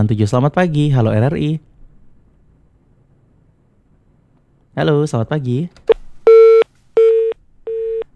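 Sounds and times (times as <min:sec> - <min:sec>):
speech: 0:00.0 - 0:01.7, 0:04.8 - 0:05.9
telephone busy tone after a live call-in line drops: 0:06.3 - 0:08.0.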